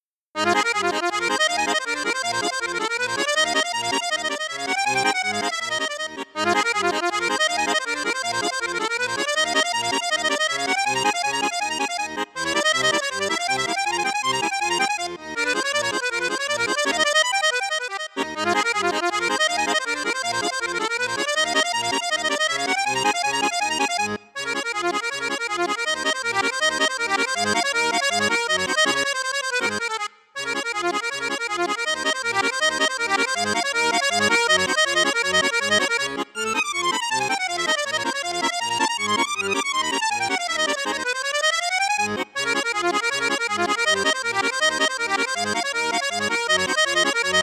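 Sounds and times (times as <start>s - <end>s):
Cavagnolo Vedette 10 accordion on two flutes and piccolo register: 0.0s - 47.4s.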